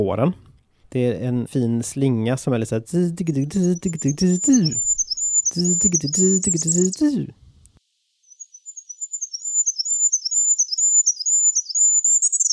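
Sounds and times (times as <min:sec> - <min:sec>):
speech: 0:00.0 - 0:04.8, 0:05.5 - 0:07.4
goldcrest song: 0:03.0 - 0:12.5.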